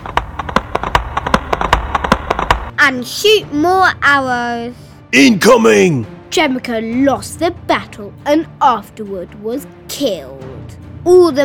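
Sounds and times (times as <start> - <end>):
horses galloping in a Mongol battle: 0.0 - 2.7
speech: 2.9 - 11.4.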